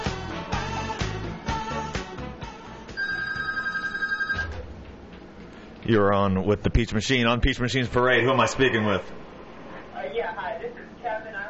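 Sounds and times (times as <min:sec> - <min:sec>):
rhythmic music: 0:00.0 - 0:03.0
telephone ringing with a rapid trilling burst: 0:03.0 - 0:04.6
speech: 0:05.9 - 0:09.2, 0:10.2 - 0:11.4.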